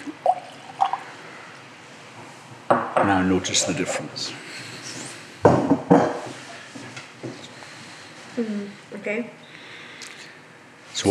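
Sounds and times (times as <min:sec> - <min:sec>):
water drips into a glass of whisky: 0:00.0 - 0:01.1
speech: 0:03.0 - 0:04.5, 0:08.4 - 0:09.4.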